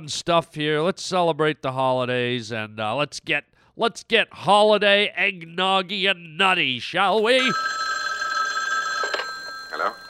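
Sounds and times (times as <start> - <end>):
speech: 0.0 - 7.8, 9.8 - 10.0
telephone ringing with a bright electronic trill: 7.2 - 10.0.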